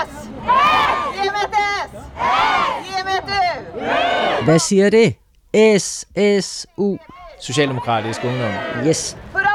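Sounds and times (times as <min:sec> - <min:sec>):
large group of young people chanting rhythmic shouted syllables: 0:00.0 - 0:04.5, 0:06.8 - 0:09.3
speech: 0:04.4 - 0:09.4.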